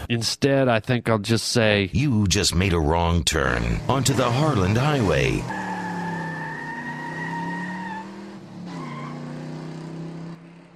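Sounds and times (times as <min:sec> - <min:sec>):
speech: 0:00.1 - 0:05.7
car tearing away with tire squealing: 0:04.0 - 0:10.3.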